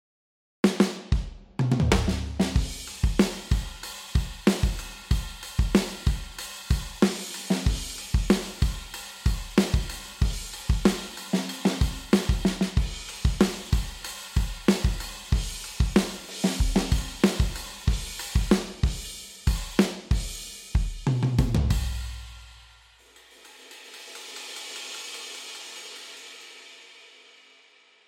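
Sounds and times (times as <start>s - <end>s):
sabi drum: 0.9s - 22.6s.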